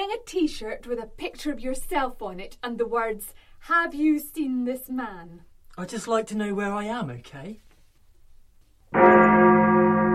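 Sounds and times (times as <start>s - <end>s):
speech: 0.2s - 7.6s
old church bell ringing: 8.9s - 10.1s.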